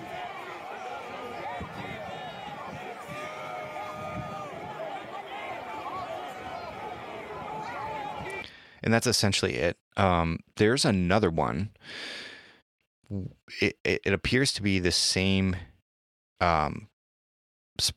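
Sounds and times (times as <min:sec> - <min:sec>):
crowd booing and jeering: 0:00.0 - 0:08.4
speech: 0:08.8 - 0:12.2, 0:13.1 - 0:15.7, 0:16.4 - 0:16.9, 0:17.8 - 0:17.9.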